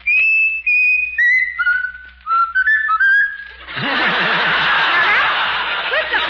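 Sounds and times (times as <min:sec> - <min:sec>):
person whistling a short tune: 0:00.0 - 0:03.6
breathy laughter: 0:03.7 - 0:06.2.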